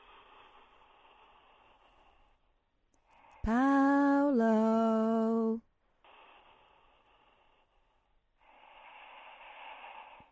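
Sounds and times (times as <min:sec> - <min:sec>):
man's loud nasal breathing, almost a snore, over a phone: 0:00.0 - 0:02.4, 0:05.1 - 0:10.3
speech: 0:04.4 - 0:04.6.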